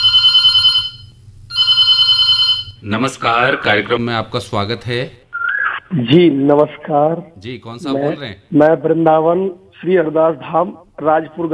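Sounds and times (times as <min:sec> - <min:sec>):
telephone ringing for an incoming listener call: 0:00.0 - 0:02.8
speech: 0:02.8 - 0:05.2, 0:05.9 - 0:11.5.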